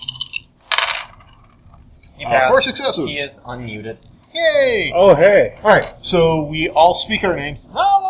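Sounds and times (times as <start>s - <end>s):
five dice rolled across a tabletop for a magic test: 0.1s - 1.6s
speech: 2.2s - 7.9s.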